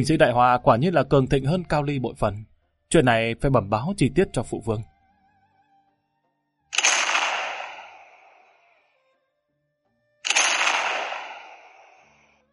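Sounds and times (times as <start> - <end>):
speech: 0.0 - 4.9
cannon blasts with long rumbling tails: 6.8 - 8.5, 10.3 - 12.2.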